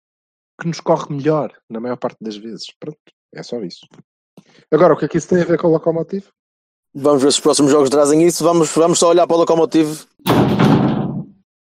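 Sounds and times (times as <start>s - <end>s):
speech: 0.6s - 10.9s
two dogs crashing against a closed door: 10.2s - 11.4s.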